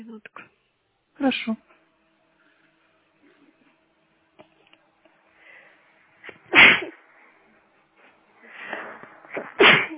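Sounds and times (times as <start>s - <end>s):
speech: 0.0s - 0.4s, 1.2s - 1.7s
soft breathing: 5.1s - 9.5s
person sneezing: 6.2s - 7.0s, 8.6s - 9.9s.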